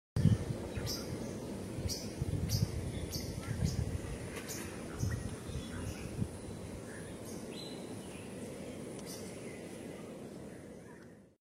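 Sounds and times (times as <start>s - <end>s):
Speke's weaver singing: 0.2s - 11.2s.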